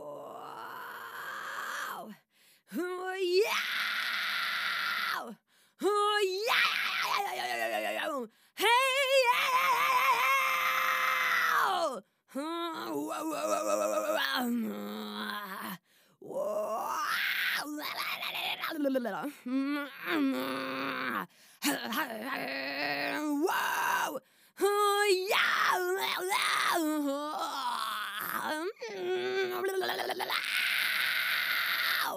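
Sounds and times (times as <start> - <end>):
person practising distorted throat screams and groans: 0.0 - 2.2, 3.2 - 5.4, 6.2 - 32.1.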